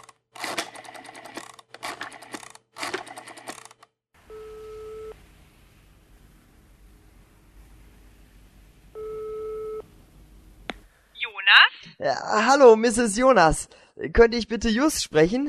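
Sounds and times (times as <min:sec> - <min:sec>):
low steady hiss: 0:04.2 - 0:11.3
electronic telephone ringing: 0:04.3 - 0:05.2, 0:09.0 - 0:09.8
speech: 0:12.0 - 0:15.4.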